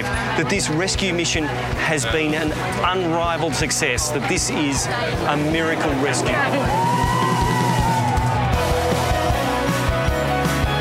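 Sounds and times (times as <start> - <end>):
speech: 0.4 - 7.3
street crowd of Chiang Rai residents cheering and yelling: 4.2 - 10.0
ambulance siren wailing: 5.9 - 8.8.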